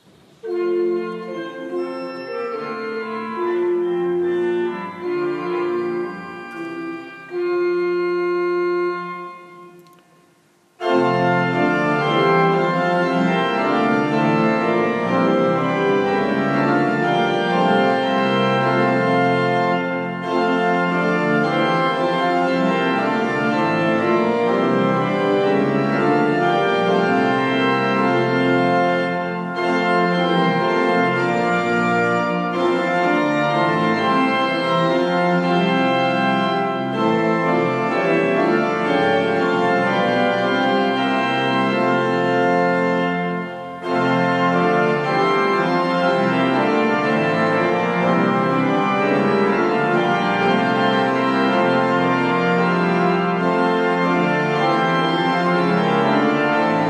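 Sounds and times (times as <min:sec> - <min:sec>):
pipe organ: 0:00.0 - 0:56.8.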